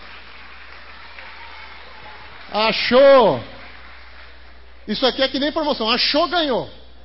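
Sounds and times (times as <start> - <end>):
congregation applauding: 0.0 - 5.4
speech: 2.5 - 3.5, 4.8 - 6.8.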